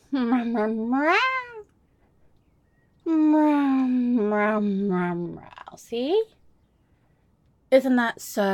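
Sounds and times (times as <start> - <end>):
speech: 0.1 - 1.4, 3.1 - 6.4, 7.7 - 8.5
person imitating a cat with drawn-out rising meows: 0.1 - 1.7.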